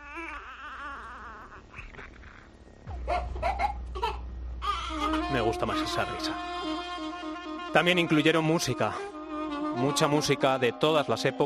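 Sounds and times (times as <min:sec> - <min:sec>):
newborn baby crying in high wavering wails: 0:00.0 - 0:02.3, 0:03.1 - 0:11.1
low steady rumble: 0:02.6 - 0:04.8
speech: 0:05.3 - 0:06.9, 0:07.7 - 0:11.4.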